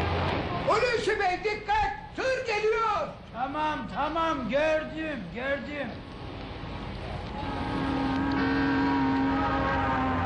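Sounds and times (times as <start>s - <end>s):
approaching bus engine drone: 0.0s - 0.7s, 6.0s - 10.2s
speech: 0.7s - 6.1s.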